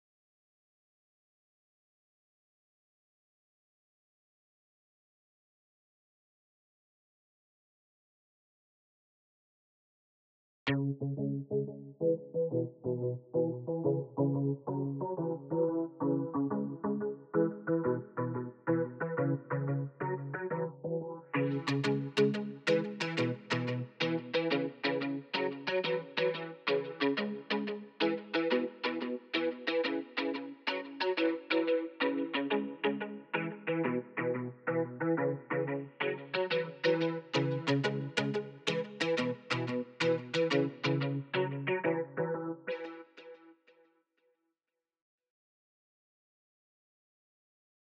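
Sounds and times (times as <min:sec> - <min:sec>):
guitar at 90 BPM: 0:10.7 - 0:43.5.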